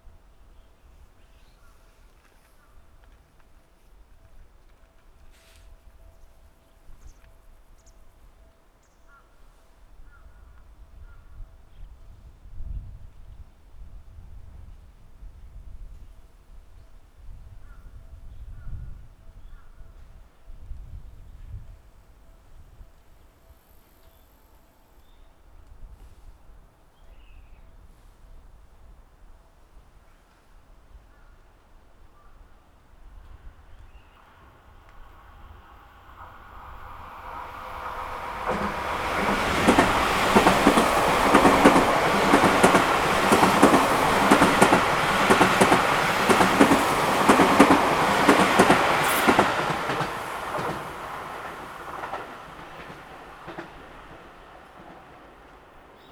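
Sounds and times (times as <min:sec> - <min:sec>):
outbound down train passing: 0:33.0 - 0:56.1.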